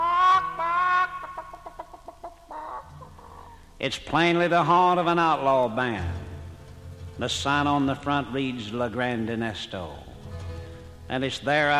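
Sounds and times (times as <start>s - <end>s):
chickens squawking in a coop: 0.0s - 3.7s
speech: 3.8s - 6.2s, 7.2s - 10.1s, 11.1s - 11.7s.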